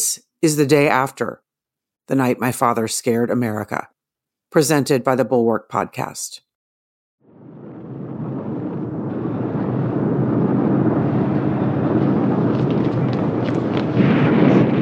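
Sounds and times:
speech: 0.2s - 1.4s, 2.1s - 6.4s
Minuteman missiles launching: 7.4s - 14.8s.

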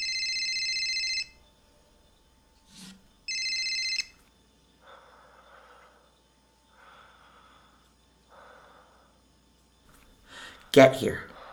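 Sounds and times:
burner phone ringing with electronic trilling tone: 0.0s - 1.5s, 2.8s - 4.3s
speech: 10.8s - 11.3s.

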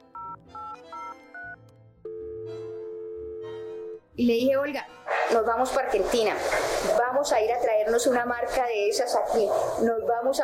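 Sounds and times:
steady continuous telephone tone: 0.0s - 4.0s
telephone keypad dialing tones: 0.2s - 2.2s
speech: 4.2s - 10.4s.

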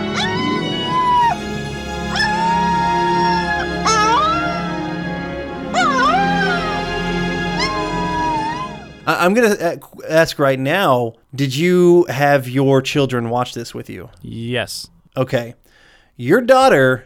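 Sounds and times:
young wolf pup howling in sadness: 0.0s - 9.0s
speech: 9.2s - 15.6s, 16.2s - 17.0s.

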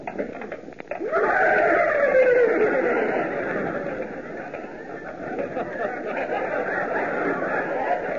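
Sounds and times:
men imitating horses neighing and nickering: 0.9s - 4.8s
laughter: 1.0s - 8.1s.

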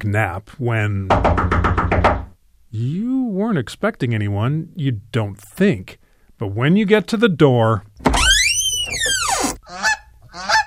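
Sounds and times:
speech: 0.0s - 8.2s
goose honking: 9.6s - 10.6s.

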